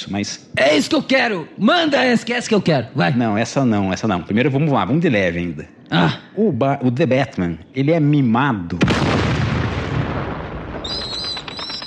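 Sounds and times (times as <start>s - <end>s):
speech: 0.0s - 9.0s
bomb explosion sound effect rumbling roar: 8.8s - 11.8s
high whistling tones: 10.9s - 11.8s.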